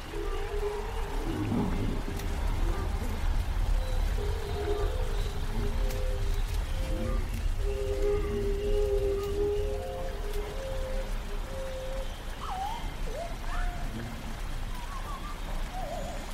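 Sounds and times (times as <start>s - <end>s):
rain-like hiss: 0.0s - 16.3s
constant low rumble in a prehistoric forest ambience: 0.3s - 9.6s.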